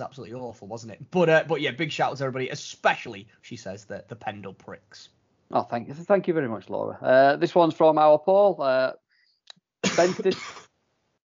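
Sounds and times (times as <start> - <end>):
speech: 0.0 - 9.0, 9.9 - 10.6
small cough: 9.8 - 10.8.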